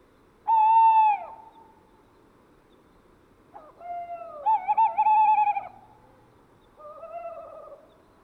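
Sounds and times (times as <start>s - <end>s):
male tawny owl hooting: 0.5s - 1.7s, 3.6s - 5.8s, 6.8s - 7.9s.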